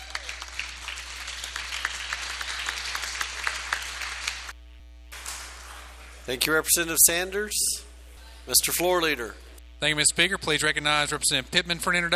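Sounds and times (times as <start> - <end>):
applause from a room full of people: 0.0 - 4.6, 5.2 - 6.1
low hum: 0.0 - 12.1
speech: 6.3 - 7.9, 8.5 - 12.1.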